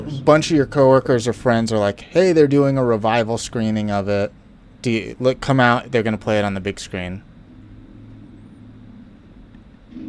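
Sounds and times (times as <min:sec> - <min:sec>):
speech: 0:00.0 - 0:07.3
motorcycles driving by outside: 0:00.0 - 0:10.0.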